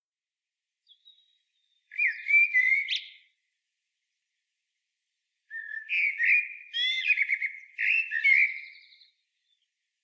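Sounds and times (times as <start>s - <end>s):
common blackbird Turdus merula singing fluted phrases: 0.9s - 3.3s, 5.5s - 9.6s.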